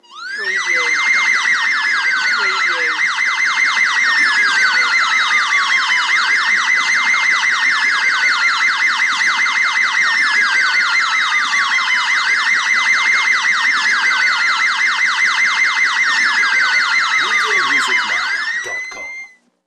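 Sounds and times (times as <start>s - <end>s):
layered ambulance siren: 0.0s - 19.3s.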